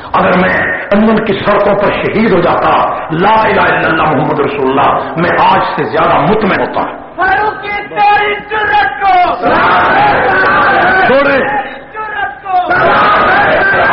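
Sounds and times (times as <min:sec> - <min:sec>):
speech: 0:00.1 - 0:11.8
large crowd chanting slogans in unison: 0:09.2 - 0:11.1, 0:12.6 - 0:13.9.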